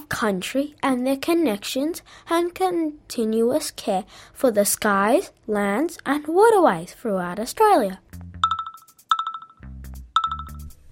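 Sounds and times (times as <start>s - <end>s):
speech: 0.1s - 8.3s
phone notification bright electronic chime bursts: 8.4s - 9.6s, 10.2s - 10.7s.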